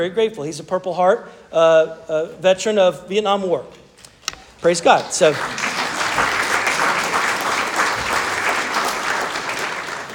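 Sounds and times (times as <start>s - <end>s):
speech: 0.0s - 3.8s, 4.6s - 6.3s
audience clapping: 4.9s - 10.1s.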